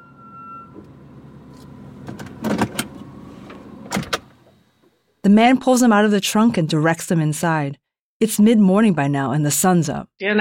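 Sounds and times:
car rolling to a stop: 0.0 - 4.6
mechanical clunks and creaks: 0.3 - 4.6
speech: 5.2 - 10.3.

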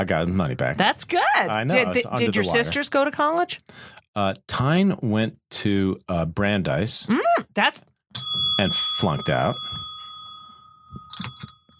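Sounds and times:
speech: 0.0 - 9.8
small bell ringing while being handled: 8.2 - 11.7.

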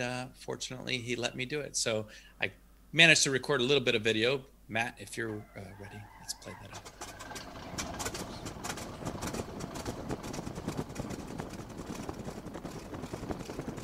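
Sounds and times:
speech: 0.0 - 8.0
Stearman biplane radial engine starting up: 6.8 - 13.3.

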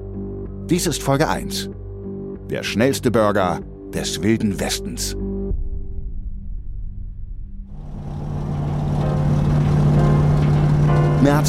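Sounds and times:
speech: 0.7 - 1.8, 2.5 - 5.3, 11.2 - 11.4
road noise: 7.7 - 11.4
car driving past along 14th Street in San Bernardino: 7.8 - 11.3.

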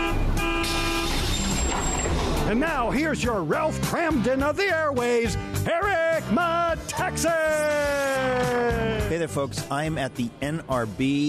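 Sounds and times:
bus horn toot: 0.0 - 1.7
vehicle engine rumbling: 0.0 - 3.4
speech: 2.5 - 11.2.

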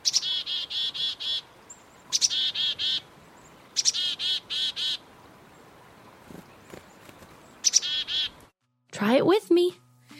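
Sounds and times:
black-capped chickadee calling chickadee-dee-dee: 0.0 - 5.1, 6.4 - 8.5
speech: 9.0 - 9.8.

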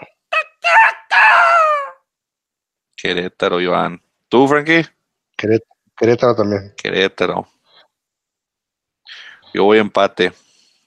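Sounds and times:
rooster crowing: 0.3 - 2.0
speech: 3.0 - 7.5, 9.5 - 10.4.

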